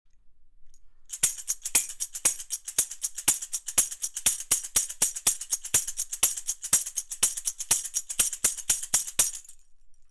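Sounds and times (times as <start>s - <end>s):
rhythm board percussion: 1.1s - 9.6s.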